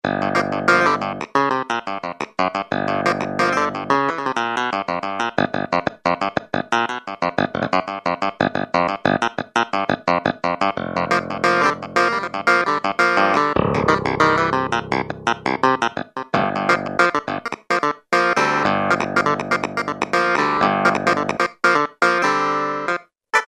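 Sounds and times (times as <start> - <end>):
clavinet: 0.0 - 23.4.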